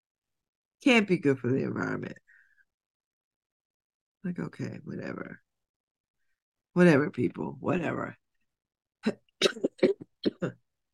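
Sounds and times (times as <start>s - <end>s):
speech: 0.8s - 2.2s, 4.2s - 5.4s, 6.8s - 8.2s, 9.0s - 10.6s
short dry coughs: 9.4s - 10.5s.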